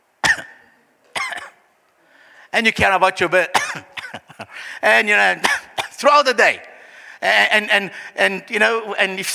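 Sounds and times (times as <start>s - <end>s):
harsh raspy coughs: 0.2s - 1.6s, 3.5s - 4.5s, 5.4s - 6.0s
speech: 2.5s - 4.2s, 4.8s - 9.3s.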